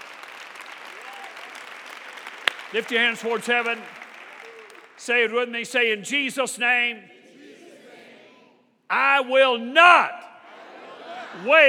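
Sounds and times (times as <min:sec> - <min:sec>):
standing audience applauding: 0:00.0 - 0:05.4
speech: 0:02.7 - 0:04.0, 0:05.0 - 0:07.2, 0:08.9 - 0:10.2, 0:11.4 - 0:11.6
laughter: 0:10.3 - 0:11.6.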